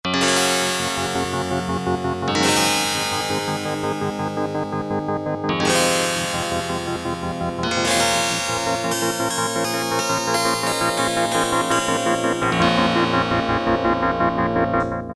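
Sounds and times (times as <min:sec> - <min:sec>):
synthesized harpsichord and strings: 0:00.1 - 0:15.0.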